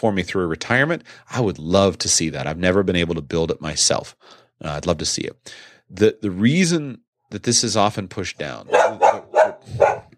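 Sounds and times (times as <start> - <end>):
speech: 0.0 - 9.1
dog barking: 8.7 - 10.1.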